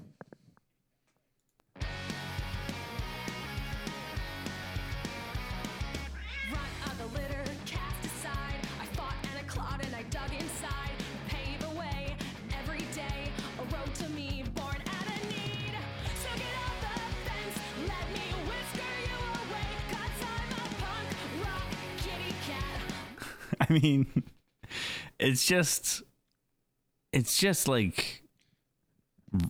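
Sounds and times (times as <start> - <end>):
fast punk rock song with drums and distorted guitars: 1.8 - 23.2
laughter: 23.2 - 24.3
speech: 23.7 - 24.3, 25.2 - 26.1, 27.1 - 28.2.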